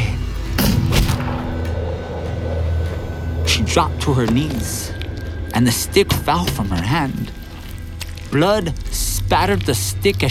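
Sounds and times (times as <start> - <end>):
low rumble: 0.0 - 10.3
pistol shot fired by a rider on a rearing horse: 0.6 - 1.6
speech: 3.7 - 5.0, 5.6 - 7.4, 8.3 - 10.3.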